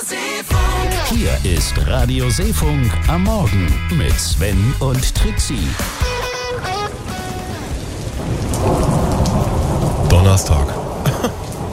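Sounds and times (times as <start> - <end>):
speech: 0.4 - 6.8, 10.2 - 11.4
deep loud thunder rumbling: 0.6 - 11.7
steady hissing rain: 5.6 - 11.7.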